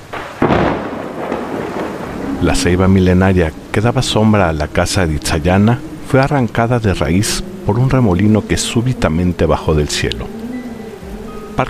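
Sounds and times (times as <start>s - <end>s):
thunder crack from a lightning strike rolling into a long rumble: 0.0s - 9.1s
steady storm noise: 0.0s - 11.6s
speech: 2.4s - 10.4s.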